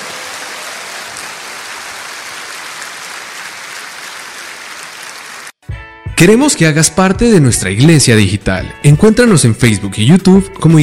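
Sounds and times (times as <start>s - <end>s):
large crowd applauding at a Christian church service: 0.0s - 5.6s
speech: 6.2s - 10.8s.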